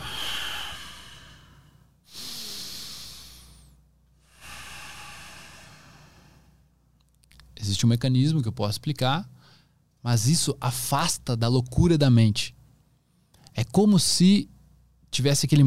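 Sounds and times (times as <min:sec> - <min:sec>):
slow deliberate breathing exercise: 0:00.0 - 0:06.8
speech: 0:07.6 - 0:09.4, 0:10.0 - 0:12.6, 0:13.6 - 0:14.5, 0:15.1 - 0:15.6.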